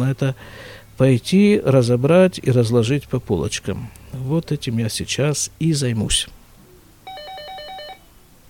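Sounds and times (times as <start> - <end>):
speech: 0.0 - 6.4
telephone ringing with rapidly alternating electronic tones: 7.0 - 8.2.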